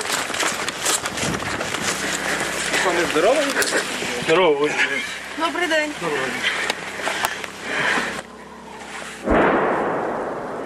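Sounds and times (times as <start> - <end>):
outdoor noise: 0.0 - 10.6
speech: 3.1 - 6.6
artillery cannon firing at the front near Serebrianka: 9.2 - 10.6.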